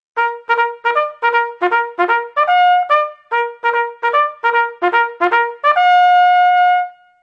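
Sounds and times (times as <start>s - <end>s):
bugle call: 0.2s - 7.1s.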